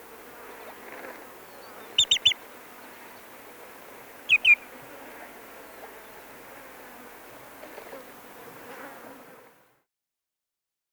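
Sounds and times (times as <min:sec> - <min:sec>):
common greenshank calls: 0:02.0 - 0:02.4, 0:04.3 - 0:04.6.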